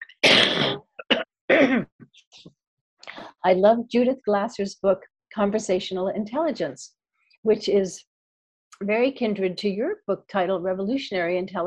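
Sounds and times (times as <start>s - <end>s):
throat clearing: 0.0s - 2.0s
person with the flu coughing: 0.1s - 2.0s
speech: 1.7s - 2.6s, 3.4s - 8.1s, 8.8s - 11.6s.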